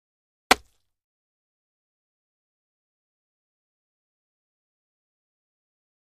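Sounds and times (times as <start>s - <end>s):
arrow into body, short and quick: 0.5s - 0.8s.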